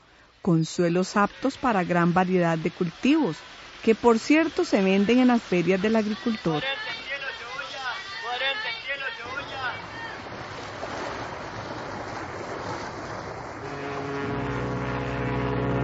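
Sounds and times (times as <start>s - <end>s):
wind: 0.0s - 15.8s
speech: 0.4s - 6.9s
water rushing as a boat arrives at a dock: 0.9s - 15.8s
boat engine drone arriving at a dock: 13.4s - 15.8s.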